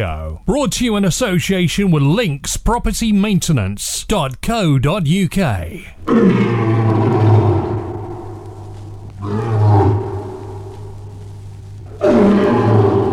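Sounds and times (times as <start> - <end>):
speech: 0.0 - 7.3
lion roaring: 6.0 - 13.1.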